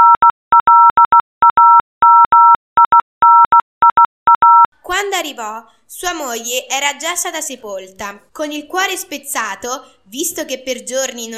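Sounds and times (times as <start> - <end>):
Morse code beeps spelling out a name: 0.0 - 4.7
speech: 5.3 - 11.3.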